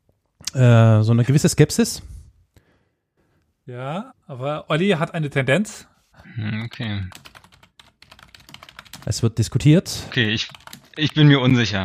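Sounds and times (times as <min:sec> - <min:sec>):
speech: 0:00.6 - 0:02.2, 0:03.7 - 0:07.3, 0:09.0 - 0:11.8
rapid clattering keystrokes on a computer keyboard: 0:06.6 - 0:09.2, 0:10.2 - 0:11.2.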